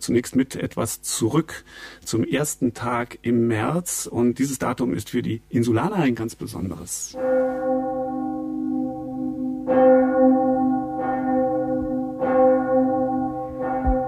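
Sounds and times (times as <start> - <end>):
speech: 0.0 - 7.5
church bell ringing with heavy strikes: 7.2 - 14.0.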